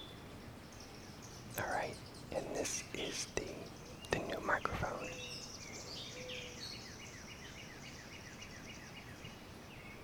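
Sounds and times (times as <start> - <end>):
birds chirping outdoors: 0.0 - 10.0
constant low hiss: 0.0 - 10.0
speech: 2.6 - 5.3.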